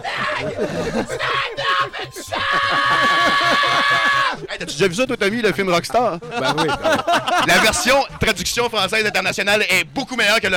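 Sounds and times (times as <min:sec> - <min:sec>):
man screaming loudly: 0:00.0 - 0:04.5
laughter: 0:00.0 - 0:09.3
noise: 0:00.0 - 0:10.5
speech: 0:00.0 - 0:10.5.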